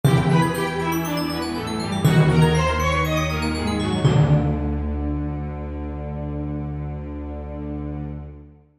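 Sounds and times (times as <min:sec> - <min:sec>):
glockenspiel in a dramatic orchestral accent: 0:00.0 - 0:05.2
dramatic orchestral accent: 0:00.0 - 0:08.5.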